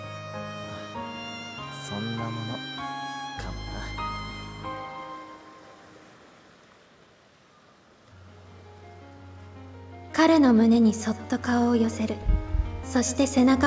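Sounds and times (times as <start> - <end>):
sustained low musical tones: 0.0 - 6.5, 8.1 - 13.6
ocean waves washing onto a shore: 0.0 - 13.6
speech: 1.9 - 4.0, 10.2 - 13.6.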